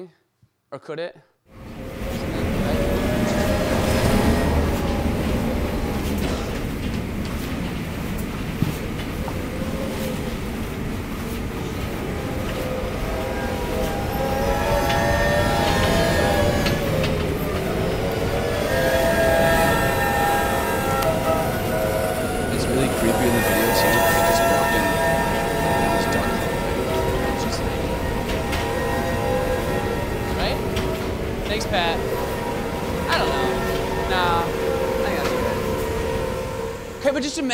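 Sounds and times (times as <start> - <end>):
speech: 0.0 - 1.6
hurricane-force wind roaring and whistling: 1.6 - 37.0.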